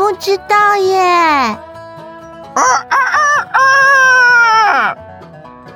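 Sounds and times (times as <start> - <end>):
speech: 0.1 - 1.7, 2.5 - 4.1
rooster crowing: 2.6 - 5.0.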